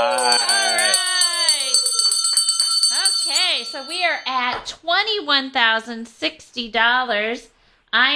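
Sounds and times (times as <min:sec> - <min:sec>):
handbell rung to celebrate a donation update during a fundraising drive: 0:00.0 - 0:04.3
speech: 0:03.8 - 0:08.1.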